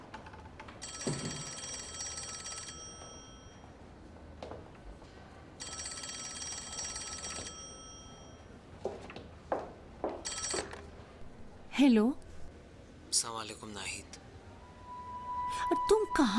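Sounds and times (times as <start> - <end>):
telephone ringing: 0.8 - 3.7, 5.6 - 8.6, 10.2 - 11.1
speech: 11.8 - 12.2, 13.2 - 14.3, 15.9 - 16.3.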